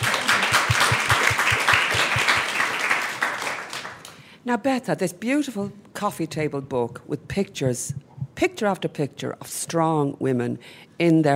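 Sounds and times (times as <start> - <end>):
audience applauding with dense clapping: 0.0 - 4.2
speech: 4.5 - 11.3.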